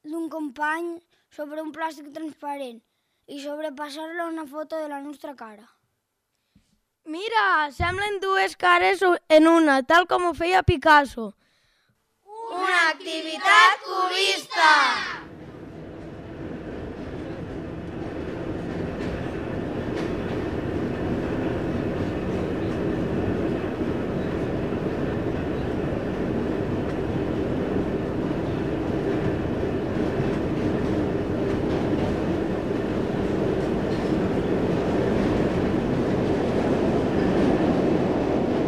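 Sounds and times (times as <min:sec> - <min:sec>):
speech: 0:00.3 - 0:05.8, 0:07.1 - 0:11.4, 0:12.5 - 0:15.2
subway train rumbling in motion: 0:13.9 - 0:38.6.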